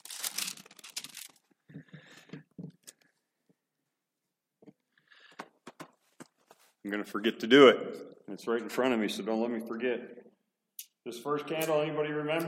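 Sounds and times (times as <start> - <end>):
thin Bible pages rustling and crinkling: 0.0 - 1.5, 5.9 - 6.8
speech: 6.8 - 10.2, 11.0 - 12.4.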